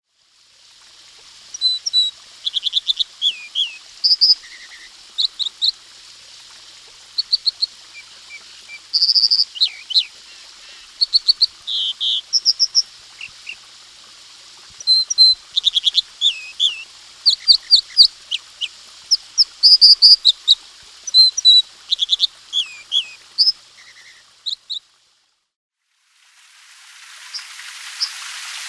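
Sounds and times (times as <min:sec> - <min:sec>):
American dipper: 0:01.5 - 0:13.7, 0:14.7 - 0:24.8.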